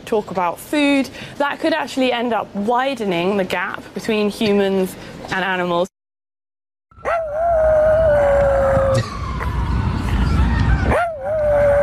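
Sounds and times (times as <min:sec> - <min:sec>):
rumbling outdoor background in Central Park: 0:00.0 - 0:05.9, 0:06.9 - 0:11.8
speech: 0:00.1 - 0:05.9
small dog howling at sirens: 0:07.0 - 0:09.1, 0:10.9 - 0:11.8.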